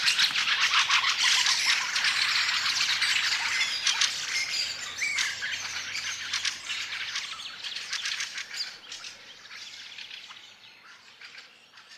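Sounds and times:
Fieldfare chatter of harsh scratchy notes: 0.0s - 7.3s.

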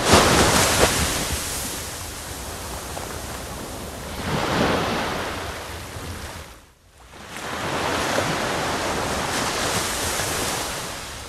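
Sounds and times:
surf washing along a wide shoreline: 0.0s - 11.2s.

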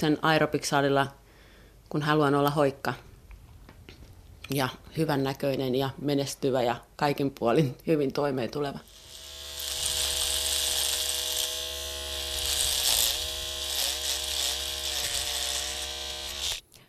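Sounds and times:
speech: 0.0s - 1.2s, 1.9s - 3.1s, 4.5s - 9.0s
electric hair clipper buzzing: 8.8s - 16.6s.

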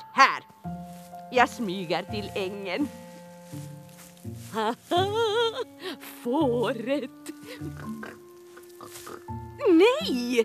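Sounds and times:
speech: 0.2s - 8.2s, 9.6s - 10.4s
laughter: 4.9s - 5.8s
pig oinking and grunting: 7.6s - 9.3s.

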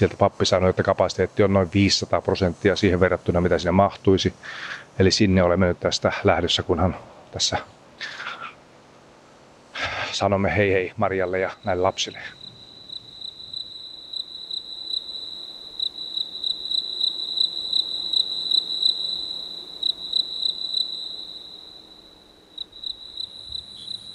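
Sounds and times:
speech: 0.0s - 8.2s, 9.8s - 12.4s
faint rumbling background: 0.0s - 13.3s
crickets chirping at night: 0.0s - 24.1s.

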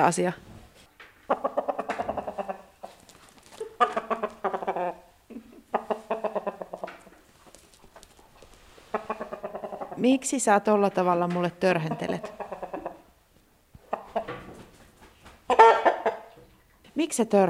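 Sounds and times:
speech: 0.0s - 0.5s, 10.0s - 12.4s, 17.2s - 17.4s
rooster clucking at a stable: 1.3s - 3.0s, 3.6s - 7.1s, 8.9s - 10.0s, 11.8s - 13.1s, 13.8s - 14.3s, 15.5s - 16.3s.

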